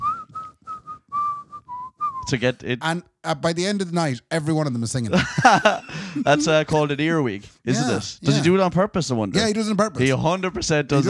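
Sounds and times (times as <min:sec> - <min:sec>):
person whistling a melodic phrase of a song while loading gear: 0:00.0 - 0:02.3
speech: 0:02.3 - 0:11.0
laughter: 0:05.0 - 0:06.8.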